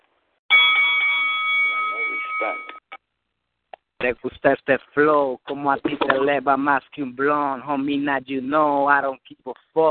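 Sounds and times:
bell ringing to start battle: 0.5 - 2.9
speech: 2.4 - 2.8, 4.0 - 9.9.

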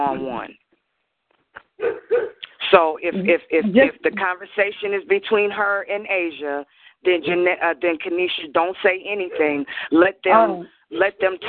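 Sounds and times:
speech: 0.0 - 0.6, 2.7 - 11.4
dog barking in the neighborhood: 1.8 - 2.4.

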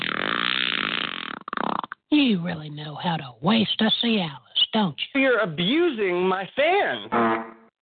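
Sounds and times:
long loud buzzing fart: 0.0 - 2.0, 7.1 - 7.7
speech: 2.1 - 7.4.

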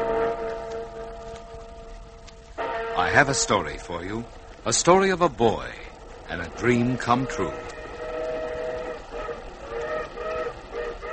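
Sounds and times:
sustained multi-toned train whistle: 0.0 - 3.7, 6.5 - 11.1
train running on rails: 0.0 - 11.1
speech: 3.0 - 7.7.

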